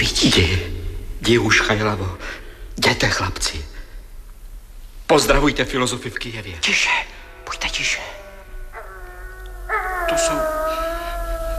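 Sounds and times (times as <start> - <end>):
speech: 0.0 - 3.7, 5.1 - 8.2, 10.1 - 10.6
low rumble: 0.0 - 11.5
wolf howling: 6.7 - 11.5.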